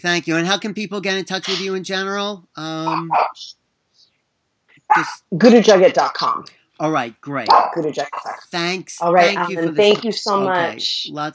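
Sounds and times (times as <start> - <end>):
speech: 0.0 - 3.6, 4.9 - 11.3
small temple dog yapping: 7.5 - 8.3.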